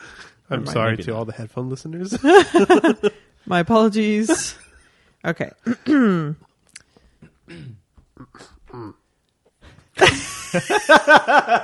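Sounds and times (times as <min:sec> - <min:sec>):
speech: 0:00.5 - 0:04.6, 0:05.2 - 0:06.5, 0:10.1 - 0:11.6
laughter: 0:02.1 - 0:03.2, 0:10.0 - 0:11.6
person clearing throat: 0:07.2 - 0:09.1.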